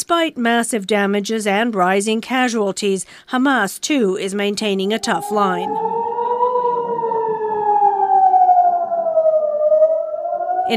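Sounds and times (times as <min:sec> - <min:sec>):
speech: 0:00.0 - 0:06.0
air raid warning siren wailing: 0:04.6 - 0:10.7.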